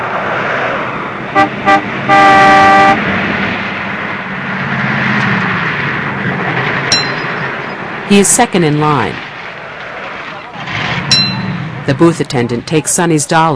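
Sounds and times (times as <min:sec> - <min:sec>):
low car rumble driving along a country road: 0:00.0 - 0:13.5
car horn honking while approaching a toll booth on a country road: 0:01.4 - 0:03.0
speech: 0:08.1 - 0:09.2, 0:11.9 - 0:13.5.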